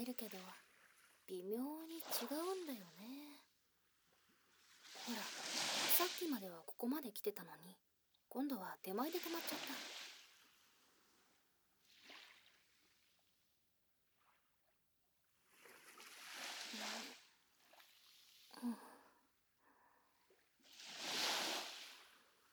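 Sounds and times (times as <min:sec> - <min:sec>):
speech: 0:00.0 - 0:00.7, 0:01.3 - 0:03.4, 0:05.0 - 0:10.0, 0:18.6 - 0:18.9
small waves washing up on a beach: 0:00.0 - 0:03.4, 0:04.4 - 0:06.7, 0:08.9 - 0:11.2, 0:15.5 - 0:18.6, 0:20.6 - 0:22.5.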